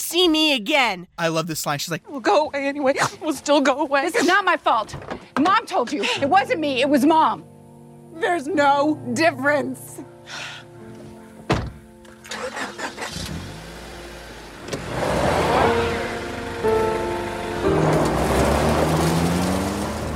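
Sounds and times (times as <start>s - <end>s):
speech: 0.1s - 7.5s, 8.2s - 10.6s
car door slamming shut: 11.5s - 11.9s
car engine starting and revving as the car pulls away: 12.2s - 20.1s.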